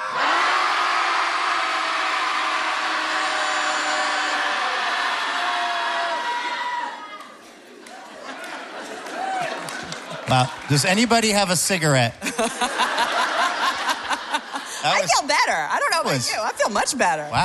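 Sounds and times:
group of people yelling together in a sustained roar: 0.0 - 7.2
laughter: 7.7 - 11.1, 12.1 - 15.3
speech: 10.3 - 13.0, 14.8 - 17.4.

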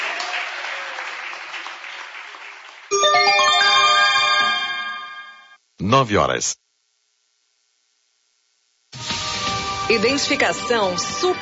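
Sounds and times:
crowd applauding during a religious radio program: 0.0 - 3.8
bright ringing electronic chime sequence: 2.9 - 5.6
speech: 5.8 - 6.6, 9.9 - 11.4.

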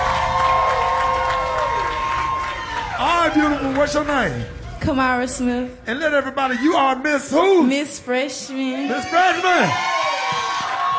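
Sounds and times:
large audience cheering and applauding: 0.0 - 4.6, 8.9 - 10.9
speech: 3.3 - 9.9.

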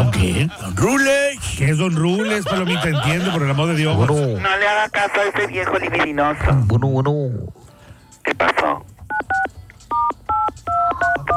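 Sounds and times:
laughter: 0.0 - 1.1, 1.9 - 4.4
speech: 0.0 - 7.6, 8.2 - 8.9
telephone number dialed on a touch-tone phone: 9.1 - 11.3.

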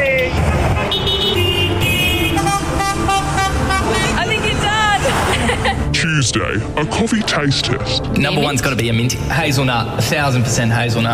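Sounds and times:
steady road noise: 0.0 - 11.1
car horn toots: 0.8 - 4.8
laughter: 5.0 - 5.9
speech: 6.2 - 11.1.

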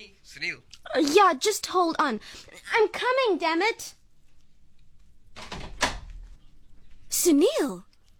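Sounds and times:
speech: 0.0 - 4.0, 7.2 - 7.9
front door opening: 5.3 - 6.4.

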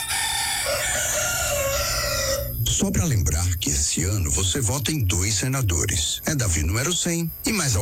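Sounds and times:
two roosters crowing: 0.0 - 2.8
speech: 2.8 - 7.8.

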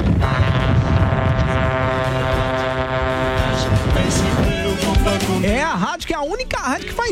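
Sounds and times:
car horns honking at a horn-honking rally: 0.1 - 5.5
speech: 5.9 - 7.1.

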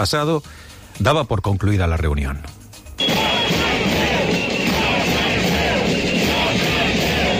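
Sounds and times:
speech: 0.0 - 3.2
large protest crowd chanting a slogan outside regional ministry: 3.0 - 7.3.

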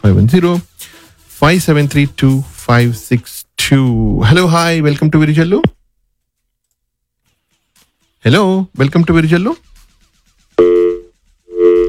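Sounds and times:
speech: 0.0 - 0.7, 1.4 - 5.8, 8.2 - 9.7
phone line tone beeps after a call-in line call disconnects: 10.6 - 11.8.

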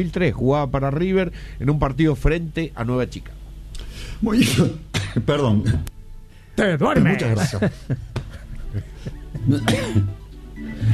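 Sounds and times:
speech: 0.0 - 3.4, 4.0 - 6.0, 6.6 - 10.9
person coughing from excitement: 4.9 - 5.3, 9.4 - 10.2
laughter: 7.1 - 10.1.

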